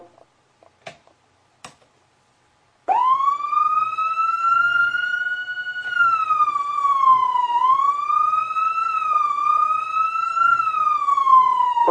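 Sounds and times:
Whelen siren dual wail yelp: 2.9 - 11.8.

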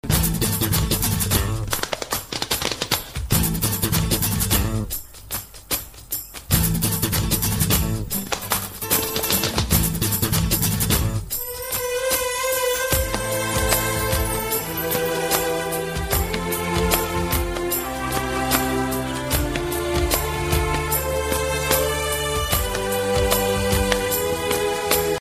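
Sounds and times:
Spanish guitar ringtone: 0.0 - 2.4, 3.3 - 5.0, 6.4 - 25.1
violin ringtone: 6.8 - 25.1.

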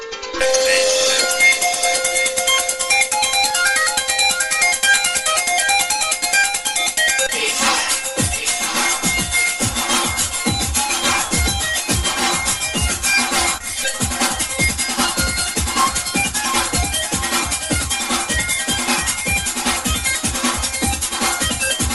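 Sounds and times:
funny Tamil ringtone: 0.4 - 21.8.

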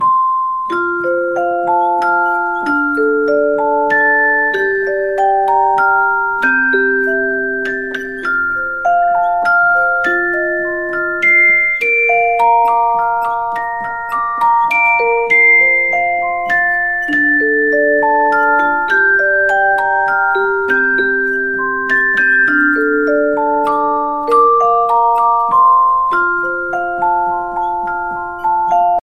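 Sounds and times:
music box ringtone: 0.0 - 29.0.

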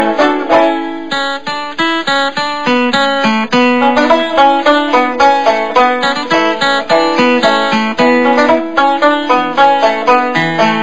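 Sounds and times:
banjos hillbilly background music ringtone: 0.0 - 10.8.

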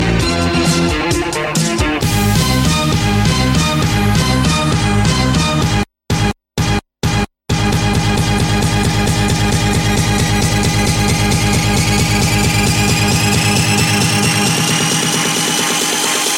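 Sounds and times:
club dance music ringtone: 0.0 - 5.8, 7.1 - 16.3.

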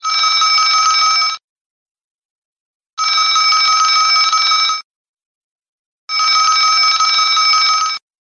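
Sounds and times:
old phone bell ringtone: 0.0 - 1.4, 3.0 - 4.9, 6.1 - 8.1.

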